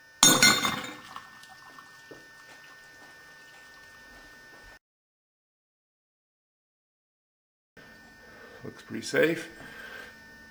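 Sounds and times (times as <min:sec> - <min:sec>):
fork thrown into a glass vessel with bright glassy clink: 0:00.2 - 0:01.2
microwave-superheated water with oil erupting in a glass vessel: 0:00.2 - 0:01.6
speech: 0:08.7 - 0:09.6.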